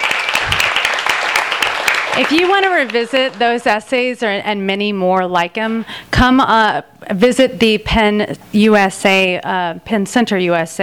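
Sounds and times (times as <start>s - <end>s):
audience applause: 0.0s - 3.3s
speech: 2.2s - 10.8s.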